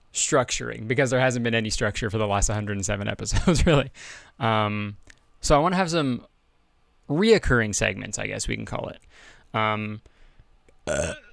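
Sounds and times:
speech: 0.2 - 6.3, 7.1 - 10.1, 10.9 - 11.3
person burping loudly: 10.9 - 11.3.

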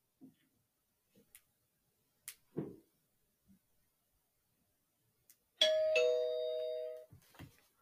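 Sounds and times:
doorbell two-note ding-dong chime: 5.6 - 7.1
faint shuffles in a quiet room: 7.1 - 7.8.

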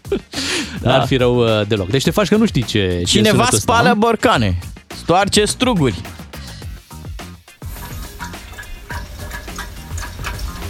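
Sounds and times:
speech: 0.1 - 6.2
water draining from a pipe while cleaning a radiator: 7.6 - 10.6.

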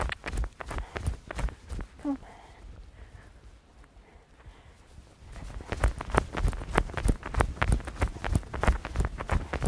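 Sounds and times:
hooves of a bruised mare trotting: 0.0 - 2.0, 5.4 - 9.6.

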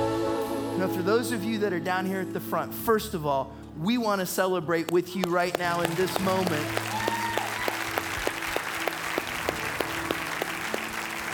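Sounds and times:
speech: 0.8 - 7.0
sharper rhythmic claps: 4.8 - 11.3
congregation clapping and applauding: 5.2 - 11.3.

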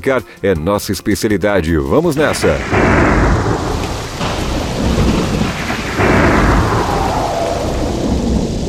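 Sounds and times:
speech: 0.0 - 3.3
deep rolling thunder: 2.2 - 8.6
steady heavy rain in a thunderstorm: 2.2 - 8.6.

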